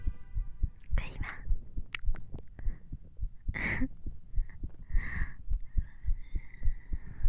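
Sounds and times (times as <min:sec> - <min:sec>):
woman's rapid heartbeat while being hugged: 0:00.0 - 0:07.2
faint breathy noise: 0:02.5 - 0:07.2.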